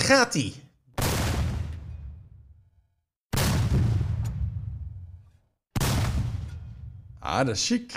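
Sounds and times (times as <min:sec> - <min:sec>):
speech: 0:00.1 - 0:00.6, 0:07.3 - 0:07.9
heavy cannon blasts with rumbling decay: 0:01.0 - 0:02.6, 0:03.3 - 0:07.2.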